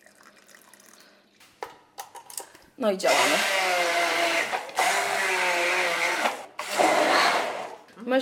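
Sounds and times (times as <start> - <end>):
still water poured into chopped mango and banana: 0.0 - 1.2
speech: 2.8 - 3.8
blender whirring as thick mango smoothie churns: 3.0 - 7.9.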